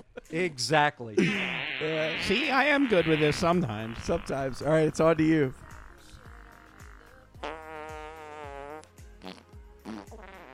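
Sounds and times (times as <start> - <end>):
speech: 0.3 - 5.6
comic fart sound effects: 1.2 - 5.0, 6.7 - 10.5
low thumping beat: 2.9 - 8.0.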